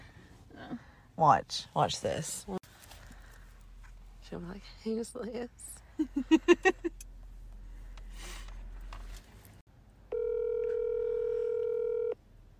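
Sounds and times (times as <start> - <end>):
speech: 1.2 - 2.6, 4.3 - 7.1
steady buzzing electronic telephone ringing tone: 10.1 - 12.2.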